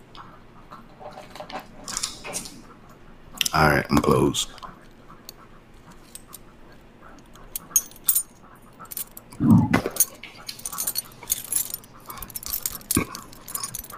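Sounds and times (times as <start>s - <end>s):
speech: 3.6s - 4.6s
ring of very old keys jangling: 7.3s - 9.3s, 9.9s - 13.9s.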